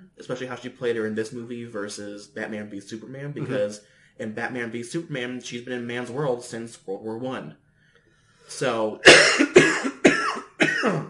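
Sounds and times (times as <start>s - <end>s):
speech: 0.2s - 7.6s, 8.5s - 9.9s, 10.8s - 11.0s
person coughing from a tickle in the throat: 9.0s - 11.0s.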